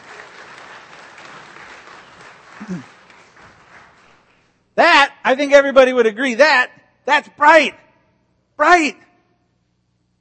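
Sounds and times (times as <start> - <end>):
crowd applause: 0.0 - 4.5
speech: 2.6 - 3.0, 4.8 - 7.8, 8.6 - 9.1.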